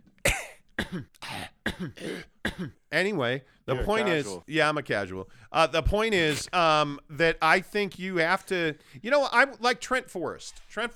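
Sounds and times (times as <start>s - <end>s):
person in a harsh raspy coughing fit: 0.2s - 2.8s
speech: 0.9s - 10.9s.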